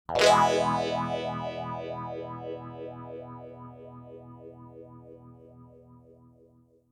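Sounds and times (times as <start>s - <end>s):
strum with wow effect: 0.1s - 4.3s.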